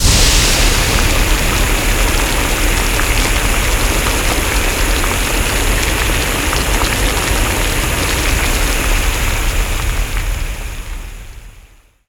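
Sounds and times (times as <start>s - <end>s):
active steam hissing: 0.0s - 11.9s.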